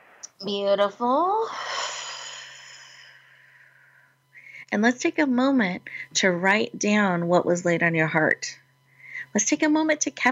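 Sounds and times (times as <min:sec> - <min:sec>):
speech: 0:00.4 - 0:01.8, 0:04.7 - 0:08.6, 0:09.3 - 0:10.3
long deep exhalation during a guided group breathing exercise: 0:01.5 - 0:04.1.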